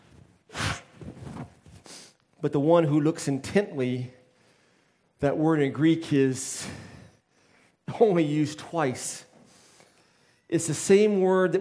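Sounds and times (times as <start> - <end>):
quieter rustling noise: 0.0 - 2.1
person blowing their nose: 0.5 - 1.1
speech: 2.4 - 4.2, 5.2 - 6.9, 7.9 - 9.3, 10.5 - 11.5.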